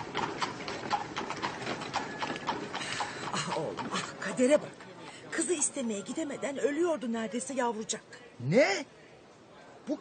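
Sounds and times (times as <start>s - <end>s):
hooves of a horse pulling a carriage clip-clopping: 0.0s - 4.8s
speech: 4.4s - 4.8s, 5.4s - 9.0s, 9.9s - 10.0s.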